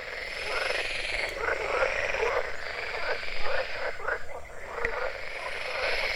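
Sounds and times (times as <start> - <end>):
chorus of many frogs croaking: 0.0 - 6.1.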